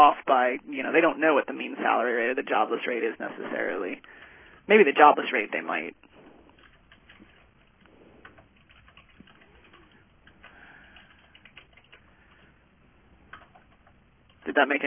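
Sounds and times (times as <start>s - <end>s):
speech: 0.0s - 6.1s, 14.4s - 14.8s
typing on a computer keyboard: 6.5s - 12.6s, 13.2s - 14.5s.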